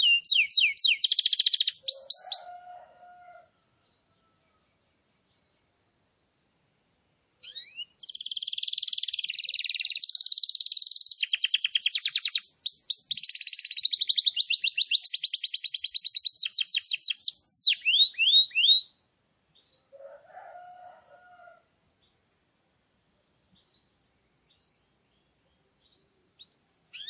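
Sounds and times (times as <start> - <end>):
canary song: 0.0 - 6.7, 7.4 - 27.0.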